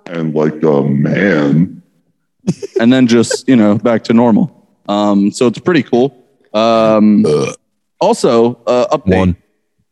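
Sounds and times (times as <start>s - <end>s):
speech: 0.1s - 1.8s, 2.4s - 9.4s
loud drawn-out burp with croaking tone: 7.2s - 7.7s.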